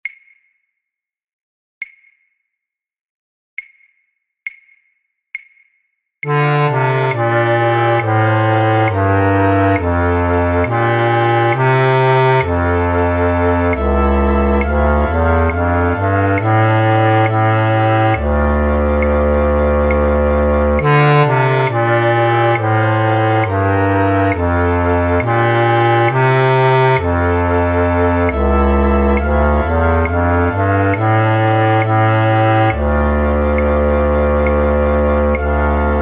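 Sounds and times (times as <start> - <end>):
contrabass flute in A: 6.3 - 36.0.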